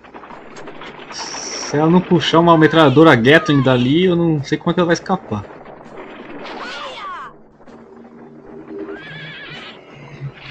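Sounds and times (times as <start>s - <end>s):
dense rumbling background: 0.0s - 10.4s
speech: 0.6s - 5.5s
horse pulling a cart whinnying: 8.8s - 10.4s.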